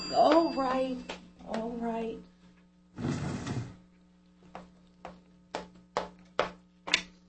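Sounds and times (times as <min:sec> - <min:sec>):
speech: 0:00.1 - 0:02.3
chair scraping across a hard floor: 0:02.9 - 0:03.8.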